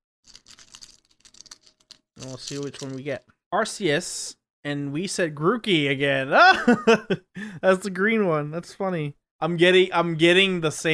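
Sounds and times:
video game cases shuffled by hand: 0:00.3 - 0:03.3
speech: 0:02.2 - 0:10.9.

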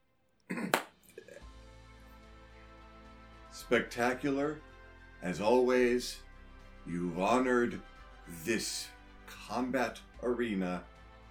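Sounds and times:
sharp hand claps: 0:00.6 - 0:01.0
speech: 0:03.6 - 0:06.2, 0:06.8 - 0:10.9.

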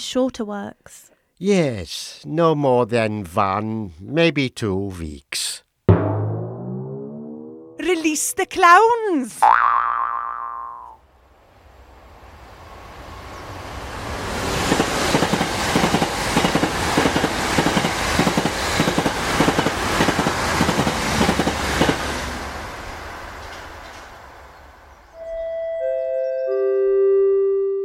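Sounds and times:
speech: 0:00.0 - 0:05.4, 0:08.1 - 0:10.0
descending electronic platform announcement chime: 0:05.9 - 0:07.9, 0:25.2 - 0:27.8
train rumbling past a railway station platform: 0:11.1 - 0:25.2.

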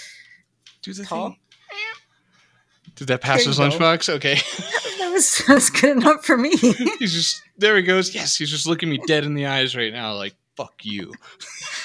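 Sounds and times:
speech: 0:00.8 - 0:01.5, 0:02.9 - 0:11.7
cat meowing: 0:01.1 - 0:02.1, 0:06.8 - 0:07.6
laughter: 0:03.0 - 0:07.4, 0:08.1 - 0:09.7, 0:10.9 - 0:11.8.

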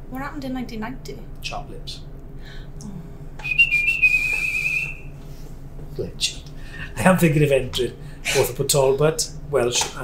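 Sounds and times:
speech: 0:00.1 - 0:03.5, 0:06.0 - 0:10.0
person whistling a sustained steady note: 0:03.4 - 0:05.1.

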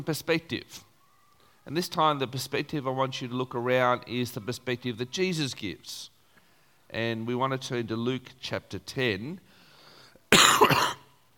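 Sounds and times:
speech: 0:00.0 - 0:00.9, 0:01.6 - 0:06.1, 0:06.9 - 0:09.5, 0:10.3 - 0:10.9
single loud cough: 0:10.3 - 0:11.1.

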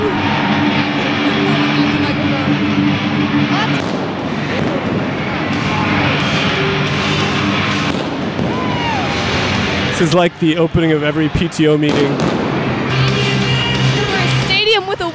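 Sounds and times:
droning music: 0:00.0 - 0:15.1
loud roar of stadium crowd noise: 0:00.0 - 0:15.1
fireworks cracking and booming in a large arena: 0:03.8 - 0:06.3, 0:07.0 - 0:09.8, 0:11.8 - 0:12.9
speech: 0:10.0 - 0:12.4.

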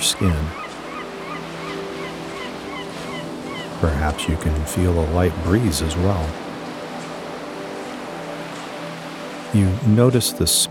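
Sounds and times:
faint bird calls: 0:00.0 - 0:03.8
ocean waves on shore: 0:00.0 - 0:10.6
speech: 0:00.1 - 0:00.7, 0:03.8 - 0:06.4, 0:09.5 - 0:10.6.

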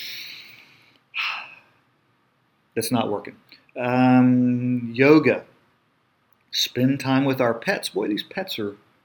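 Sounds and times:
deep breathing: 0:00.0 - 0:01.8
speech: 0:02.8 - 0:05.5, 0:06.5 - 0:08.8.

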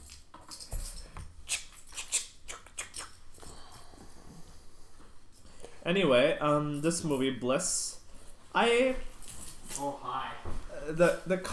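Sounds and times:
keys jingling and clinking: 0:00.0 - 0:02.2, 0:09.0 - 0:10.0
speech: 0:05.8 - 0:07.9, 0:08.6 - 0:09.1, 0:09.8 - 0:11.5.

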